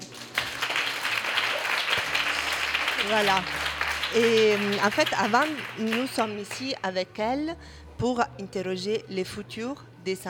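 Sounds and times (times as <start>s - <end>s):
audience applause at a live radio event: 0.0s - 6.8s
speech: 3.0s - 10.2s.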